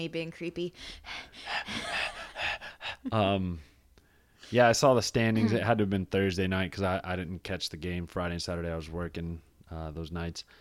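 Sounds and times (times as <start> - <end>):
speech: 0.0 - 3.7, 4.5 - 10.5
pet breathing heavily against the microphone: 0.8 - 3.1.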